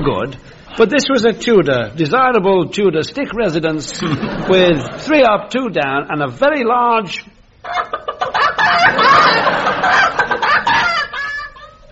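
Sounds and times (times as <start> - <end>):
speech: 0.0 - 8.0
laughter: 3.9 - 5.1, 7.7 - 11.9
chicken clucking and squawking: 7.7 - 11.7.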